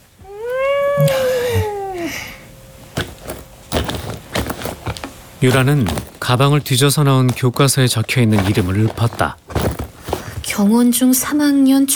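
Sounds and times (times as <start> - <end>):
rustling and scuffling: 0.0 - 11.4
large tuxedo cat meowing: 0.2 - 2.4
speech: 1.0 - 1.3, 5.4 - 9.4, 10.6 - 11.9.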